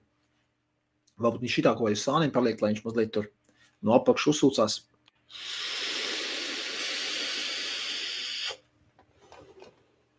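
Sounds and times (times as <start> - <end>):
speech: 1.2 - 5.6
vape drawn through a mesh RDA hissing: 5.3 - 8.6.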